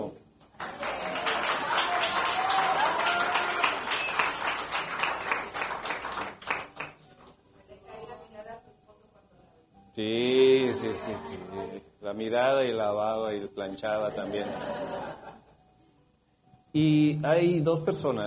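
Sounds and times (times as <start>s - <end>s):
church audience applause: 0.5s - 7.4s
speech: 10.0s - 15.2s, 16.7s - 18.2s
laughter: 10.7s - 11.7s, 14.0s - 15.5s.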